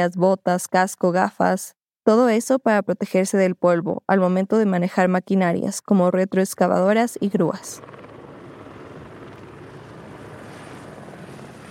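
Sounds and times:
speech: 0.0 - 8.1
helicopter hovering with rotor thrum and engine roar: 6.6 - 11.7.

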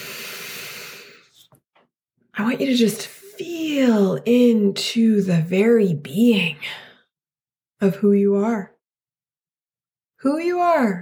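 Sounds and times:
person taking a breath: 0.0 - 1.5
speech: 2.4 - 6.9, 7.8 - 8.7, 10.2 - 11.0.

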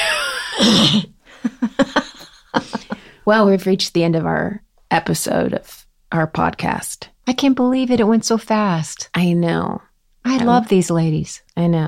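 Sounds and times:
person yawning: 0.0 - 1.1
speech: 3.2 - 11.8.

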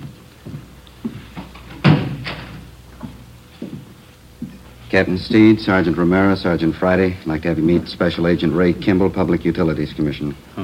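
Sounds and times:
door swinging shut: 1.7 - 2.7
speech: 4.9 - 10.4.

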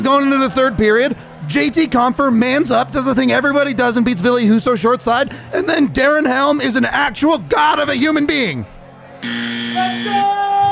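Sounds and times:
crowd noise: 0.0 - 10.7
speech: 0.1 - 10.6
ice hockey arena goal horn blaring: 9.2 - 10.7.

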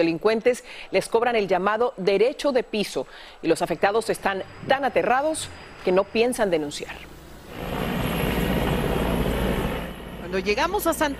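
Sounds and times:
speech: 0.0 - 7.8, 10.3 - 11.1
helicopters roaring low overhead with dense rotor rumble: 6.9 - 11.1.

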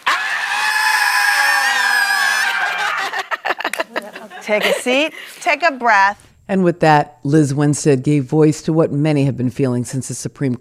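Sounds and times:
large crowd screaming at full volume: 0.0 - 3.4
laughter: 0.0 - 5.6
speech: 4.5 - 10.5.

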